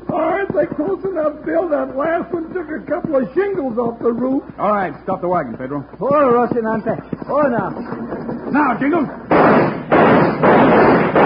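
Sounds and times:
speech: 0:00.6 - 0:09.2
loud sharp gunshots with long echo in a shootout: 0:08.0 - 0:11.2.

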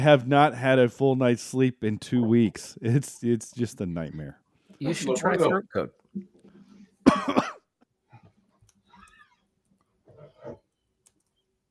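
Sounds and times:
speech: 0:00.0 - 0:06.3, 0:07.1 - 0:07.5
person with a stubborn cough coughing harshly: 0:07.0 - 0:07.7.

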